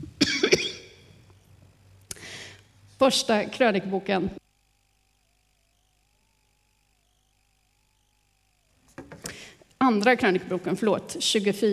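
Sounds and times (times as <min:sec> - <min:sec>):
preacher coughing sharply: 0:00.2 - 0:01.0
speech: 0:03.0 - 0:04.4, 0:09.9 - 0:11.7.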